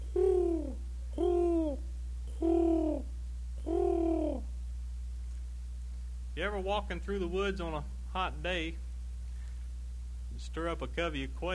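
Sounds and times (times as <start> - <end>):
pigeons cooing: 0.0 - 4.5
steady low hum: 0.0 - 11.5
speech: 6.4 - 8.8, 10.5 - 11.5.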